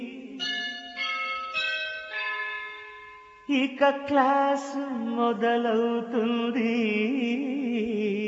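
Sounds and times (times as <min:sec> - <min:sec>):
school bell ringing first bell of the day: 0:00.4 - 0:03.6
speech: 0:03.5 - 0:08.2.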